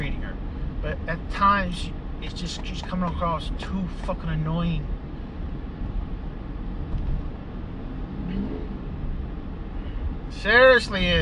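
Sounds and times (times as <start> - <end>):
speech: 0.8 - 5.0, 10.4 - 11.1
heavy diesel truck accelerating: 5.6 - 10.2.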